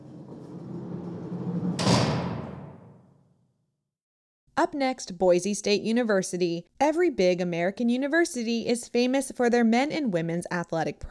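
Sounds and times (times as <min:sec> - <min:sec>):
heavy cell door rolling: 0:00.0 - 0:03.2
speech: 0:04.6 - 0:11.1.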